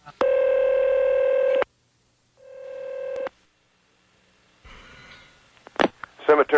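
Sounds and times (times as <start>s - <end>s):
telephone DTMF dialing tones: 0.2s - 1.6s, 2.4s - 3.3s.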